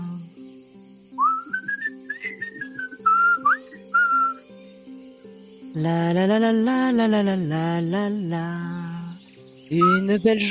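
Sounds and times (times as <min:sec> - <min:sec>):
person whistling to imitate a bird: 0:01.2 - 0:04.4, 0:09.8 - 0:10.2
speech: 0:05.8 - 0:08.9, 0:09.7 - 0:10.4.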